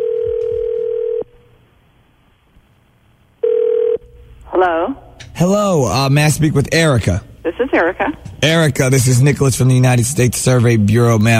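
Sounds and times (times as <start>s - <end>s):
telephone ring tone: 0.0s - 1.3s, 3.4s - 4.1s
speech: 4.6s - 11.3s.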